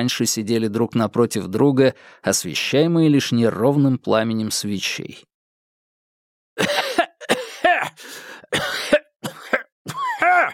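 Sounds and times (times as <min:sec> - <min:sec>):
speech: 0:00.0 - 0:05.3
throat clearing: 0:06.6 - 0:08.0, 0:08.6 - 0:10.5
man in a violent coughing fit: 0:06.6 - 0:10.5.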